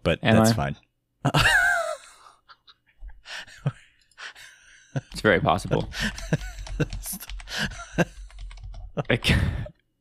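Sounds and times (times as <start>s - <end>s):
speech: 0.0s - 1.6s, 5.0s - 8.2s, 9.0s - 9.8s
fast typing on a computer keyboard: 5.1s - 9.5s.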